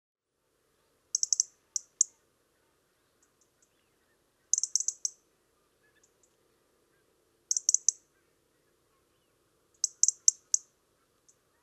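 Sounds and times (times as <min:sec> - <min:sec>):
soft faint bird notes: 0:00.6 - 0:11.6
European robin Erithacus rubecula sharp dry ticking calls: 0:01.1 - 0:02.2, 0:04.5 - 0:05.2, 0:07.5 - 0:08.1, 0:09.7 - 0:11.5.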